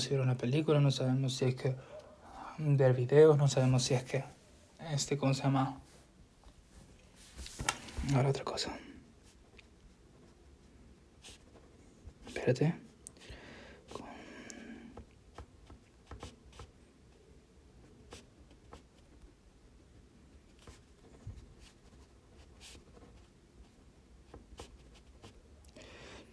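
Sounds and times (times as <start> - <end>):
speech: 0.0 - 2.0, 2.6 - 5.9, 7.6 - 8.8, 12.4 - 12.8
person writing by hand: 11.2 - 11.6, 15.0 - 16.8, 18.0 - 19.2, 20.5 - 25.4.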